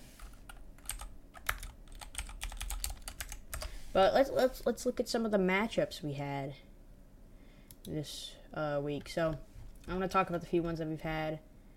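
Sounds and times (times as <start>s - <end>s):
low steady hum: 0.0s - 11.7s
rapid typing on a computer keyboard: 0.2s - 3.7s
speech: 3.9s - 6.6s, 7.9s - 11.5s.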